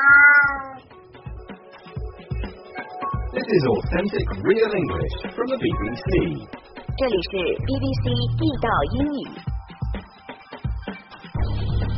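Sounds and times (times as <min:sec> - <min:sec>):
cat meowing: 0:00.0 - 0:01.0
soft low rhythmic sounds: 0:00.2 - 0:11.9
speech: 0:03.4 - 0:09.5.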